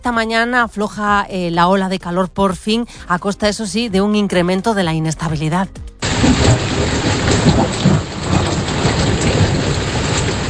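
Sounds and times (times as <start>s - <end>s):
speech: 0.0s - 7.8s
deep rolls of thunder in Galicia Spain: 6.0s - 10.4s
heavy rain pouring during a thunderstorm in Galicia Spain: 6.0s - 10.4s.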